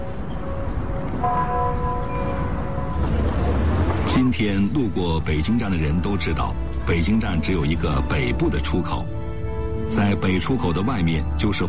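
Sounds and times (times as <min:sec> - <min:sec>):
outdoor city noise: 0:00.0 - 0:11.6
electronic clock-tower bell chime playing a slow melody: 0:00.5 - 0:03.1
speech: 0:04.2 - 0:09.2, 0:09.9 - 0:11.6.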